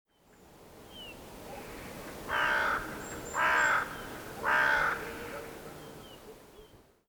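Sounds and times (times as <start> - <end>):
carrion crow Corvus corone cawing: 2.3 - 5.2.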